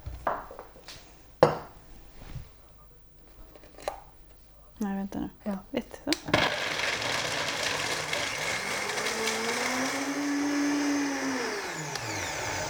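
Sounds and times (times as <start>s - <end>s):
speech: 4.8s - 6.8s
blender motor whirring while mixing a sauce: 6.2s - 12.6s.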